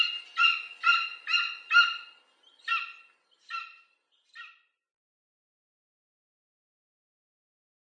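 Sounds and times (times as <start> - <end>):
golden eagle yelping: 0.0 - 4.7.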